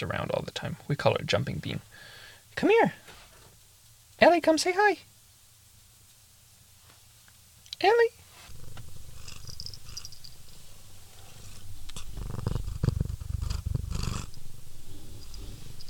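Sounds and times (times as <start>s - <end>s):
speech: 0.0s - 3.1s, 4.2s - 5.1s, 7.8s - 8.2s
soft rustles: 3.0s - 3.7s, 8.2s - 15.8s
pet cat purring at home: 8.5s - 15.8s.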